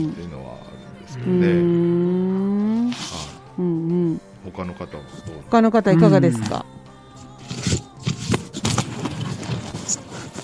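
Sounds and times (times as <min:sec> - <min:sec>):
speech: 0:00.0 - 0:01.9, 0:04.6 - 0:06.8
rustling and scraping of a participant handling something: 0:02.6 - 0:03.4, 0:07.2 - 0:10.4.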